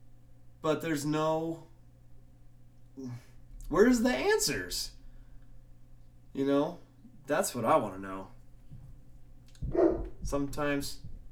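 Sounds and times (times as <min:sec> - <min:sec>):
low hum: 0:00.0 - 0:11.3
speech: 0:00.6 - 0:01.7, 0:03.0 - 0:05.0, 0:06.3 - 0:08.3, 0:10.3 - 0:11.0
person imitating dog barking: 0:09.6 - 0:10.2.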